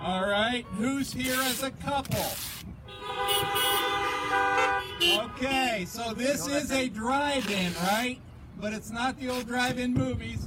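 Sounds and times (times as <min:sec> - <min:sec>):
car horns tooting at a drive-in church service: 0:00.0 - 0:01.5, 0:02.8 - 0:06.1
speech: 0:00.0 - 0:03.6, 0:05.1 - 0:10.4
steady car horn tone: 0:02.8 - 0:05.7.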